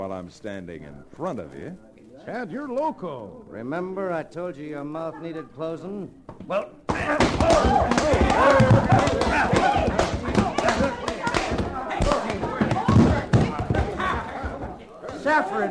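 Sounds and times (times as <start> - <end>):
busy bed of voices and commotion: 0.0 - 15.6
speech: 0.2 - 9.9, 15.3 - 15.6
heavy punch thuds as a man is knocked to the floor: 6.9 - 14.5.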